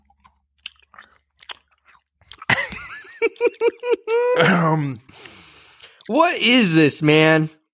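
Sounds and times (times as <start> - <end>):
wet chewing of gooey blue-flavoured candy-like food: 0.0 - 3.9, 5.2 - 6.1
laughter: 2.5 - 4.6
speech: 3.4 - 5.1, 6.1 - 7.6
murmured voiced sounds: 3.5 - 5.1.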